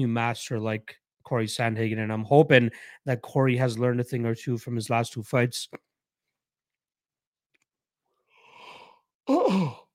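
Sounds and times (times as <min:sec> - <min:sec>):
speech: 0:00.0 - 0:05.9, 0:09.3 - 0:09.8
human yawn with voiced groan: 0:09.2 - 0:09.9.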